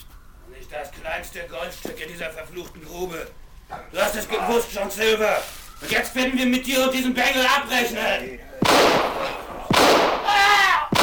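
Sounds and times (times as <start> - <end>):
speech: 0.7 - 9.4
pistol shots: 8.6 - 11.0.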